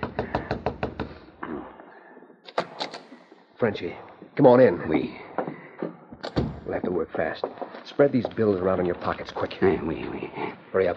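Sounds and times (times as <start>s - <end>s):
tapping on a wooden cabin door: 0.0s - 1.2s
speech: 3.6s - 5.3s, 6.7s - 10.9s.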